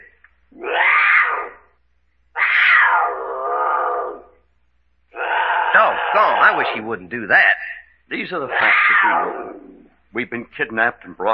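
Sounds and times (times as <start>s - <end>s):
mountain lion wailing screams: 0.5s - 1.7s, 2.3s - 4.4s, 5.1s - 6.8s, 8.5s - 10.0s
speech: 6.2s - 11.3s.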